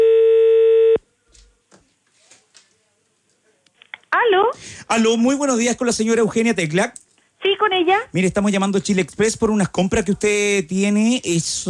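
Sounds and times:
telephone line tone from a phone call put on air: 0.0s - 1.0s
speech: 4.9s - 7.0s, 7.6s - 11.6s.

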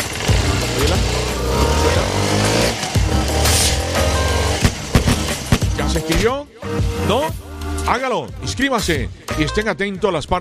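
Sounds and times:
Suzuki DR160X motorcycle engine starting and running: 0.0s - 6.3s
speech: 6.0s - 10.3s.

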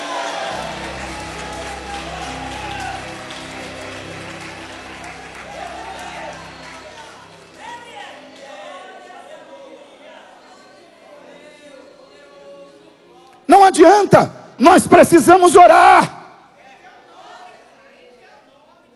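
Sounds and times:
audience clapping at a Christian worship service: 0.0s - 8.9s
speech: 13.7s - 16.2s.

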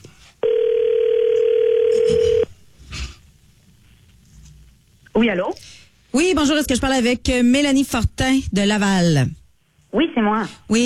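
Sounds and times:
telephone dial tone while placing a call: 0.4s - 2.4s
speech: 5.2s - 10.8s.

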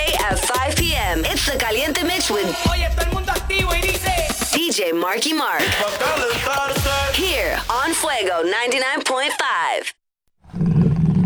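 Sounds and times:
speech: 0.3s - 3.8s, 4.8s - 10.0s
growling roar sound effect for a jaguar mascot: 10.4s - 11.2s.

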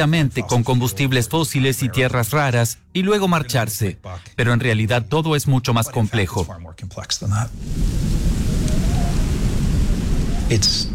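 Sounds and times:
speech: 0.0s - 8.0s, 10.5s - 10.9s
person murmuring: 0.2s - 2.2s, 5.8s - 6.7s
deep continuous thunder rumble: 7.5s - 10.9s
heavy rain in a thunderstorm: 7.5s - 10.9s.

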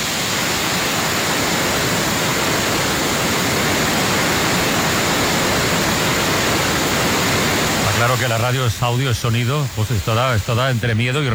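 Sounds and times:
waterfall roaring, swollen by heavy rains: 0.0s - 11.3s
speech: 8.2s - 11.3s.

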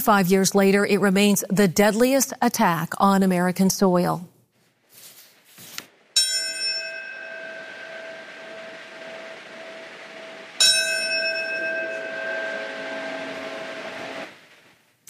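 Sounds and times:
speech: 0.0s - 4.3s
large ceremonial bell ringing: 6.2s - 14.4s.

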